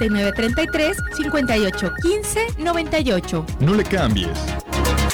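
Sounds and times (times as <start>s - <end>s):
telephone ringing with a melodic ringtone: 0.0s - 2.8s
speech: 0.0s - 5.0s.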